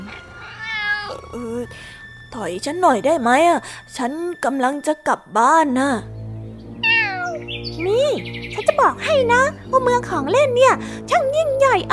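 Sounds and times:
cat meowing: 0:00.4 - 0:01.3, 0:06.8 - 0:07.6
speech: 0:01.1 - 0:06.2, 0:07.8 - 0:11.9.

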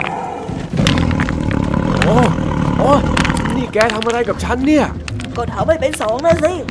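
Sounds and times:
tiger roaring in pain: 0:00.0 - 0:03.8
speech: 0:02.1 - 0:03.2, 0:03.8 - 0:06.7.

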